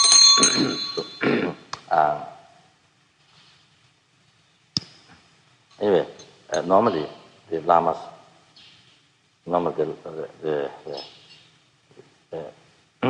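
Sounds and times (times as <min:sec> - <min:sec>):
small hand bell ringing: 0:00.0 - 0:01.3
speech: 0:05.8 - 0:08.2, 0:09.5 - 0:11.2, 0:12.3 - 0:13.0.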